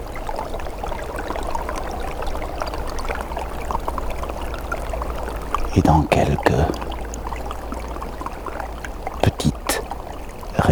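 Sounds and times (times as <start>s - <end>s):
trickle of water flowing under ice: 0.0s - 10.7s
speech: 5.8s - 6.9s.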